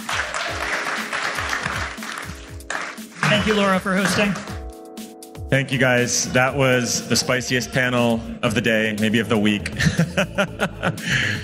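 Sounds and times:
audience applause: 0.0 - 4.6
speech: 3.3 - 4.5, 5.5 - 11.4
laughter: 9.8 - 11.4.

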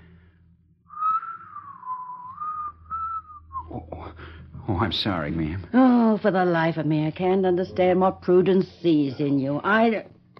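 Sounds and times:
faint low rumble: 0.0 - 8.6
man whistling a tune: 0.9 - 3.8
speech: 3.7 - 10.1.

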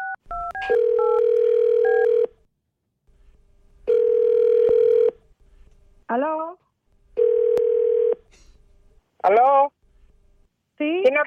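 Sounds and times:
long steady telephone ring tones: 0.0 - 2.3, 3.9 - 5.2, 7.2 - 8.2
speech: 0.6 - 0.9, 11.0 - 11.2.

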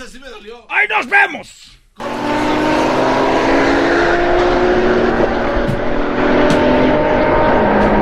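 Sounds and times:
speech: 0.1 - 2.4
Ferrari sports car engine roaring while driving away: 2.0 - 8.0.

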